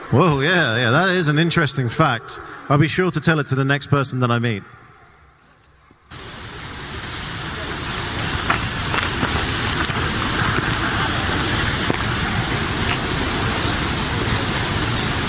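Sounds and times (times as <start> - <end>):
speech: 0.1 - 4.8
rushing and splashing water from a large water wheel churning through a stream: 6.1 - 15.2.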